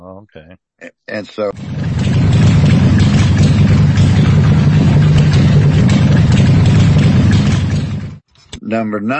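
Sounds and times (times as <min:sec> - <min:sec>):
speech: 0:00.2 - 0:02.3, 0:08.7 - 0:09.1
Harley-Davidson motorcycle engine idling: 0:01.6 - 0:08.2.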